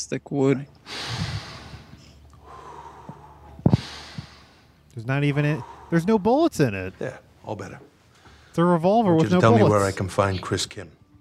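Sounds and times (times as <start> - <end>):
speech: 0.0 - 0.8, 5.0 - 7.9, 8.6 - 11.0
deep breathing with a snort-like burst: 0.8 - 6.8, 8.0 - 8.6.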